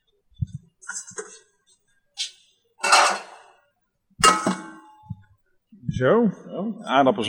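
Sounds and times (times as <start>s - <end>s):
pots clinking and clattering as potatoes are put on to boil: 2.8s - 3.6s, 4.2s - 5.1s
speech: 6.0s - 7.2s.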